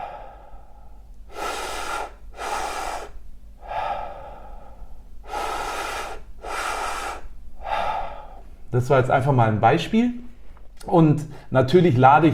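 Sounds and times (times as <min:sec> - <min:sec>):
deep forceful breathwork breaths into belly and chest, lying down: 0:00.0 - 0:08.7
speech: 0:08.8 - 0:10.2, 0:10.8 - 0:12.3.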